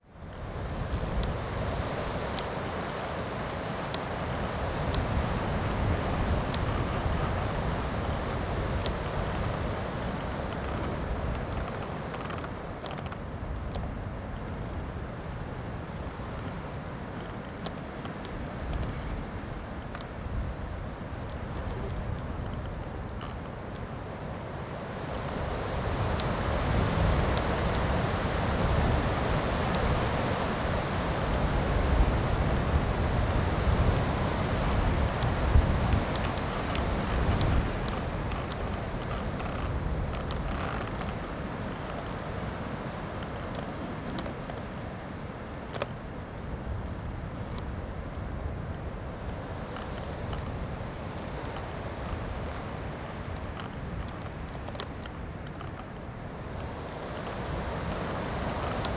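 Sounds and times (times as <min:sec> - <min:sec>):
wind in a forest: 0:00.0 - 0:58.9.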